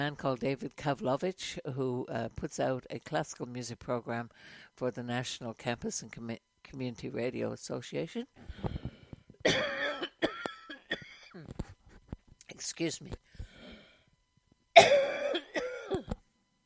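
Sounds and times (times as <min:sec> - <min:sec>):
speech: 0:00.0 - 0:08.7, 0:12.7 - 0:13.3
gasping breaths: 0:08.4 - 0:09.3, 0:13.3 - 0:14.1
person with a morning cough coughing: 0:09.4 - 0:11.5, 0:14.8 - 0:16.2.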